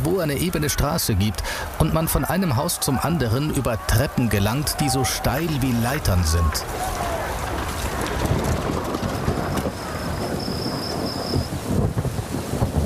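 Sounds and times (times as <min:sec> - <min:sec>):
speech: 0:00.0 - 0:07.1
heavy rain: 0:00.0 - 0:12.8
deep thunder rumbling: 0:01.6 - 0:12.8.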